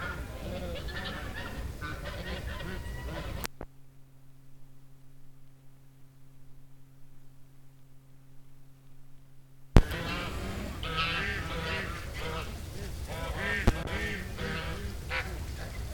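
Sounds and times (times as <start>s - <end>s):
gaggle of geese honking: 0.0s - 3.6s, 9.8s - 15.9s
low steady hum: 0.0s - 15.9s.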